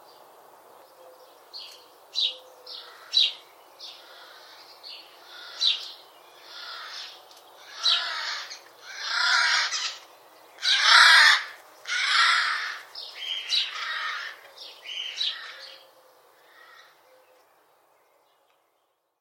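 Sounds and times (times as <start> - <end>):
Eurasian magpie giving harsh rasping squawks: 6.5 - 10.0, 10.6 - 14.4.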